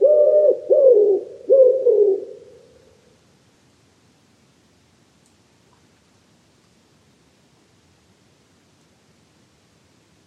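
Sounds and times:
Common wood pigeon cooing: 0:00.0 - 0:02.6.

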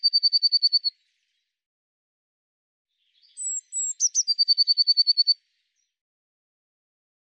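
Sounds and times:
Eurasian blue tit trilling: 0:00.0 - 0:00.9, 0:03.4 - 0:05.4.

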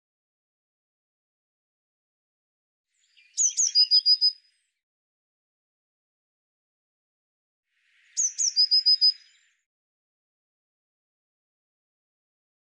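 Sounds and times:
Eurasian blue tit calling with thin high notes and fast trill: 0:03.2 - 0:04.4, 0:08.2 - 0:09.4.

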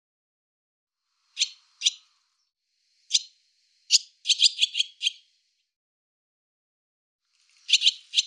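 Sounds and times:
barn swallow calling with sharp clipped chirps: 0:01.3 - 0:02.2, 0:03.1 - 0:05.3, 0:07.5 - 0:08.2.

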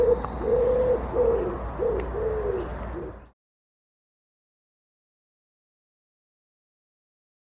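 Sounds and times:
bird giving low cooing notes at an even pitch: 0:00.0 - 0:03.3.

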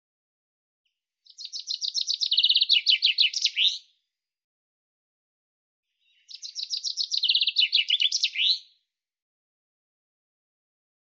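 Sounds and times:
common chaffinch singing: 0:01.3 - 0:03.9, 0:06.1 - 0:08.8.

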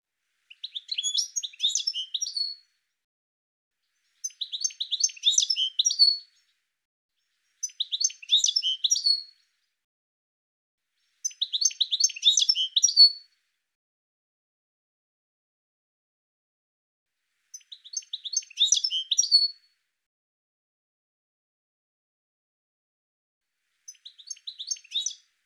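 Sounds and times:
bird twittering chirps: 0:00.5 - 0:02.6, 0:04.0 - 0:06.2, 0:07.5 - 0:09.3, 0:11.2 - 0:13.2, 0:17.5 - 0:19.6, 0:23.9 - 0:25.2.

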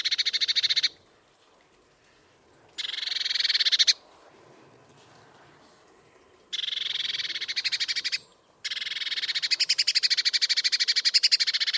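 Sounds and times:
Eurasian blue tit churring: 0:02.8 - 0:04.0, 0:06.5 - 0:11.7.

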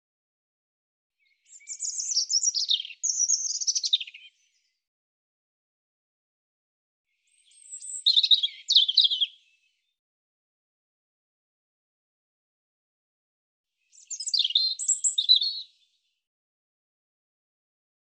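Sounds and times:
European robin singing high warbles and trills: 0:01.2 - 0:04.8, 0:07.2 - 0:10.0, 0:13.9 - 0:15.9.

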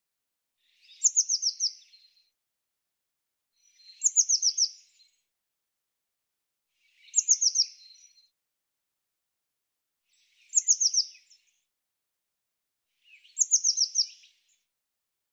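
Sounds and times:
bird song: 0:00.6 - 0:02.4, 0:03.6 - 0:05.3, 0:06.7 - 0:08.4, 0:10.1 - 0:11.8, 0:12.9 - 0:14.7.

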